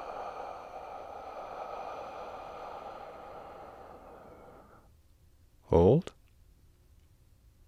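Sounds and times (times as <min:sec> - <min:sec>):
slow deep exhale during a guided breathing exercise: 0:00.0 - 0:05.0
speech: 0:05.7 - 0:06.2.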